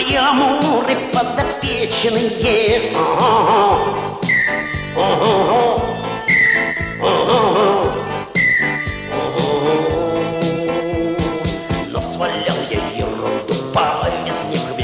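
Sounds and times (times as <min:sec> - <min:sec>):
busy loud instrumental music: 0:00.0 - 0:14.8
speech: 0:00.1 - 0:05.9
whistle trill: 0:04.2 - 0:10.1.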